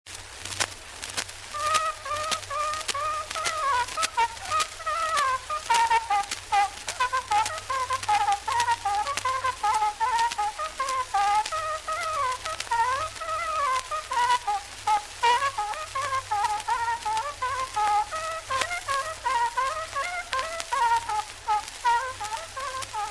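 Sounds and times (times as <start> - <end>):
sikusarv horn playing folk music: 1.5 - 23.0.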